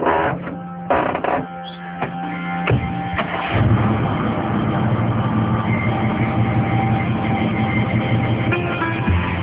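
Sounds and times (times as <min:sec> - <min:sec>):
car engine running while driving on a paved road: 0:00.0 - 0:09.4
road noise on a paved road: 0:03.1 - 0:09.4.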